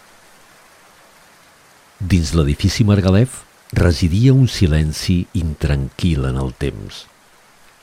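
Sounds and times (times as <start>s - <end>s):
steady rain drumming on a glass roof: 0.0s - 7.8s
speech: 2.0s - 7.1s.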